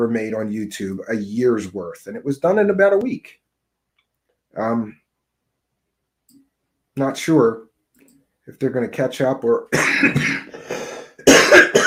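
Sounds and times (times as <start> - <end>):
speech: 0.0 - 3.4, 4.5 - 5.0, 7.0 - 7.7, 8.5 - 10.4
person coughing raspy and deep: 9.7 - 11.8.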